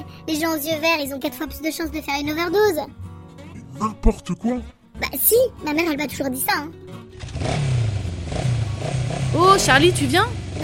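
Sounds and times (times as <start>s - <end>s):
speech: 0.2s - 3.1s, 3.8s - 7.7s, 9.4s - 10.6s
small scooter engine revving: 7.2s - 10.6s.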